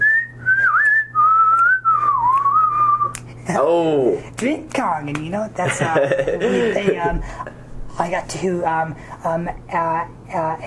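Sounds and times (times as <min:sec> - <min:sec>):
person whistling a tune: 0:00.0 - 0:03.2
faint low hum: 0:00.0 - 0:10.6
speech: 0:03.5 - 0:10.6
laughter: 0:05.6 - 0:07.6.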